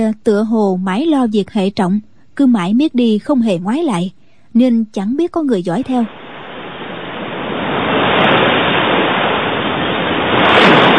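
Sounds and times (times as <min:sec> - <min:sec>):
speech: 0:00.0 - 0:06.2
sea waves crashing against a rocky shore: 0:06.1 - 0:10.9.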